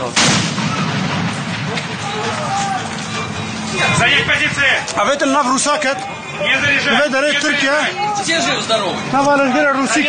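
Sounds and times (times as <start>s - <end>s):
loud explosion of an unidentified device near armored vehicles: 0.0s - 4.9s
indistinct voices shouting faintly: 1.7s - 10.0s
speech: 4.0s - 10.0s.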